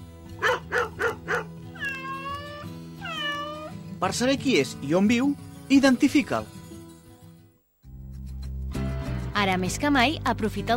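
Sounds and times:
dog barking: 0.4 - 2.1
cat meowing: 1.7 - 3.8
speech: 4.0 - 6.6, 9.4 - 10.7.

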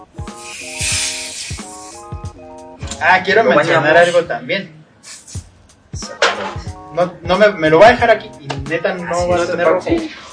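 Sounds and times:
foam spraying from a shaken aerosol can: 0.2 - 2.1, 5.0 - 5.4
speech: 3.0 - 4.8, 7.0 - 10.2.

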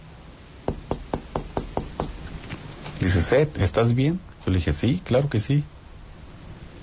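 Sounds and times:
knocking on a closed wooden bedroom door: 0.7 - 2.2
speech: 3.0 - 5.8.

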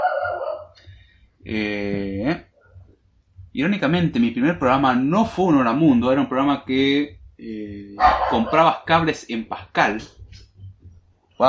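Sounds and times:
faint low hum: 0.0 - 11.4
speech: 1.5 - 2.5, 3.6 - 10.2
small dog barking: 8.0 - 8.7.

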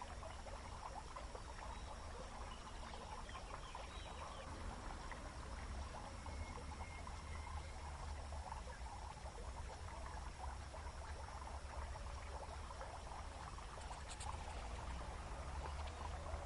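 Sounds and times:
crickets: 0.0 - 16.4
water flowing through a garden: 0.0 - 16.4.

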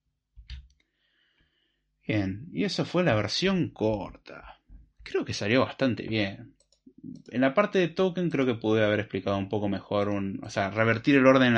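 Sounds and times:
speech: 2.1 - 11.5
soft computer clicks while taking a screenshot: 6.6 - 7.4.

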